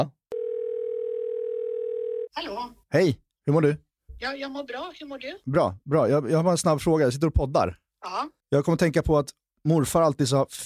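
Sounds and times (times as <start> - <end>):
telephone dial tone while calling: 0.3 - 2.3
speech: 2.4 - 10.6.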